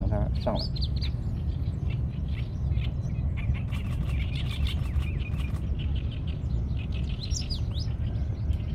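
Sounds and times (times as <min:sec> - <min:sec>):
Alström's warbler Seicercus soror singing: 0:00.0 - 0:08.7.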